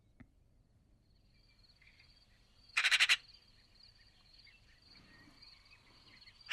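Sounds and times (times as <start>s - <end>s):
Eurasian magpie Pica pica chattering in a Tuscan city: 2.8s - 3.2s.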